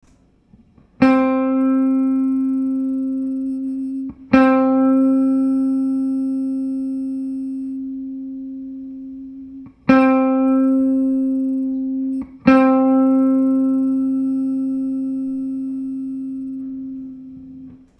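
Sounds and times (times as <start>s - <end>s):
hum: 1.4s - 17.9s.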